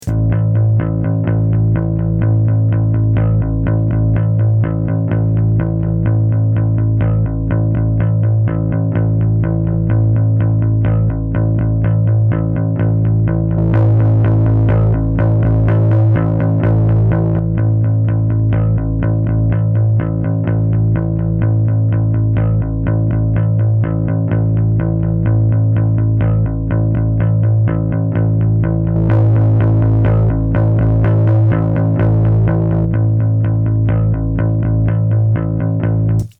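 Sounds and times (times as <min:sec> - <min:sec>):
bass notes demonstrating attack and release: 0:00.0 - 0:36.3.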